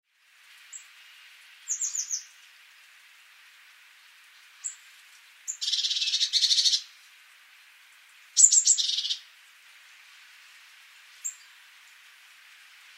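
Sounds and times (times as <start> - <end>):
low background hiss: 0.1 - 12.9
Eurasian blue tit Cyanistes caeruleus calls: 1.7 - 2.3, 5.5 - 6.9, 8.4 - 9.2.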